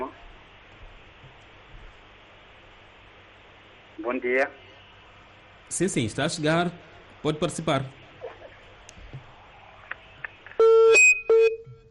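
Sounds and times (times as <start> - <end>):
speech: 4.0 - 4.6, 5.7 - 8.0
phone disconnection beeps as a call drops: 10.6 - 11.8.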